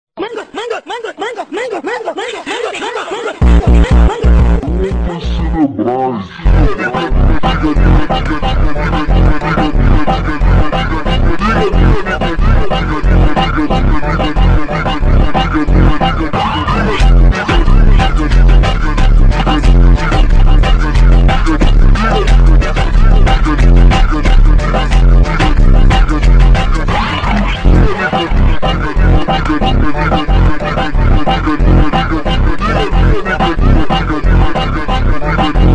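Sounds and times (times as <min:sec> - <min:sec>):
laughter: 0:00.2 - 0:05.2
slowed and reverbed funk music with deep flanger echo: 0:03.4 - 0:05.7, 0:06.4 - 0:35.7.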